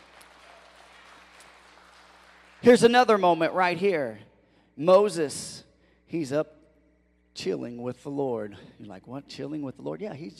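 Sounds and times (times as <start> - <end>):
audience clapping: 0.0 - 3.2
speech: 2.6 - 6.6, 7.4 - 10.3.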